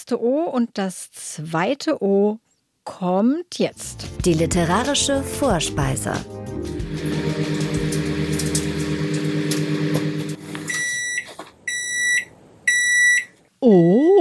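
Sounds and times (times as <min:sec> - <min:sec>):
speech: 0:00.0 - 0:07.6, 0:13.6 - 0:14.1
microwave oven humming: 0:06.7 - 0:11.2
microwave oven electronic beeps: 0:07.0 - 0:13.3.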